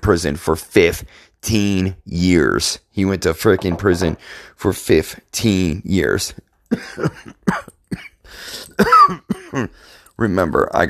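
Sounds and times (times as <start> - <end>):
speech: 0.0 - 10.8
person coughing harshly: 6.7 - 9.8.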